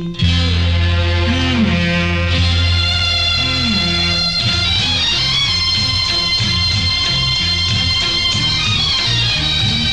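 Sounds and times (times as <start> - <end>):
male ringtone: 0.2 - 9.9.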